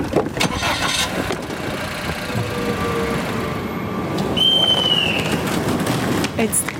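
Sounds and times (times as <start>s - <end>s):
car engine cranking and starting: 0.0s - 6.1s
brief high whine over a car engine: 1.2s - 5.6s.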